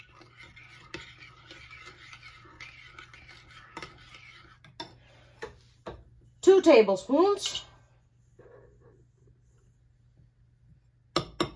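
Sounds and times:
stirring flour in a bowl: 0.0 - 6.2, 7.9 - 10.2
speech: 6.6 - 7.7.

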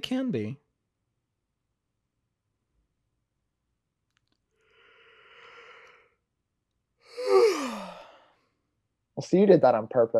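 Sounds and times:
speech: 0.1 - 0.6, 9.2 - 10.1
loud exaggerated yawn: 7.1 - 8.3.

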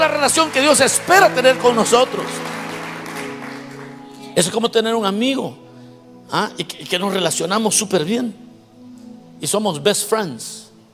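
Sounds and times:
speech: 0.0 - 2.5, 4.4 - 5.6, 6.3 - 8.4, 9.4 - 10.6
audience applauding: 0.0 - 4.4
sustained musical tones humming: 0.0 - 9.7.

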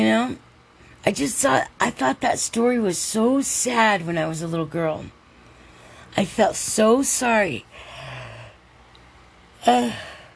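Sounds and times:
speech: 0.0 - 5.2, 6.1 - 7.9, 9.6 - 10.1
tired woman yawning: 9.6 - 10.3.

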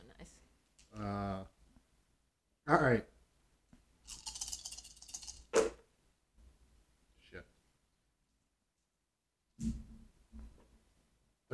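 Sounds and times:
speech: 2.7 - 3.1
dice rattling as they're shaken: 4.0 - 5.8.

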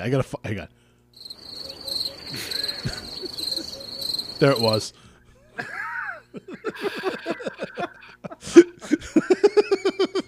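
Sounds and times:
speech: 0.0 - 1.3, 4.4 - 5.0, 5.6 - 7.8
crickets chirping: 1.2 - 5.0, 6.5 - 8.2
laughter: 2.2 - 4.7, 5.3 - 10.2.

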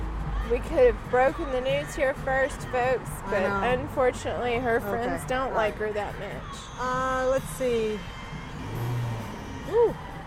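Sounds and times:
car engine rumble driving past in a neighborhood: 0.0 - 10.2
road noise: 0.0 - 10.2
speech: 0.5 - 8.2, 9.7 - 10.0
car engine revving as it drives past: 7.4 - 10.2.

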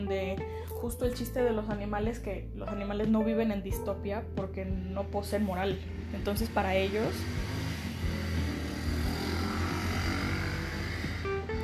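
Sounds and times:
speech: 0.1 - 7.6
motorcycle engine droning: 5.4 - 11.6.

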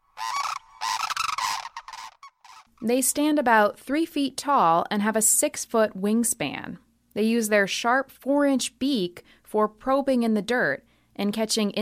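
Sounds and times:
sandhill crane harsh rolling rattle calls: 0.0 - 2.7
speech: 2.8 - 11.8.

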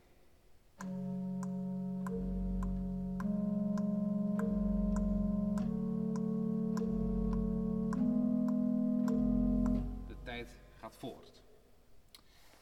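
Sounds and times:
organ music with slow sustained chords and ticking notes imitating a clock: 0.8 - 10.8
speech: 11.0 - 11.5.

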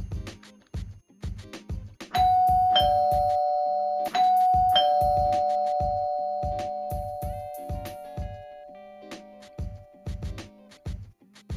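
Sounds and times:
steady rhythmic thumping beat: 0.0 - 11.5
doorbell bright two-note chime: 2.2 - 9.6.

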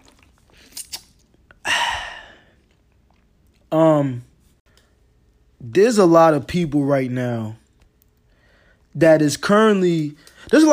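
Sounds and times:
sipping and swallowing water: 0.0 - 3.7
short voiced satisfied sigh: 1.5 - 2.6
breathy exhale: 1.6 - 2.5
speech: 3.7 - 4.3, 5.6 - 7.6, 9.0 - 10.7.

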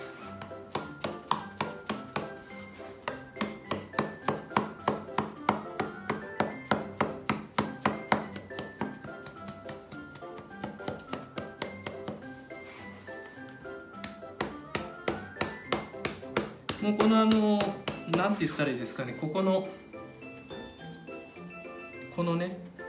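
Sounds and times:
back of a hammer tapping leather: 0.4 - 12.4, 13.9 - 18.4
speech: 16.8 - 19.8, 22.2 - 22.7.

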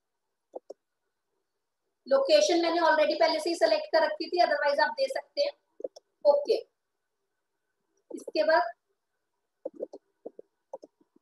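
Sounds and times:
crisp double-click of a computer mouse: 0.5 - 0.8, 5.8 - 6.1, 8.0 - 8.5, 9.6 - 11.2
speech: 2.1 - 5.6, 6.2 - 6.7, 8.2 - 8.8.

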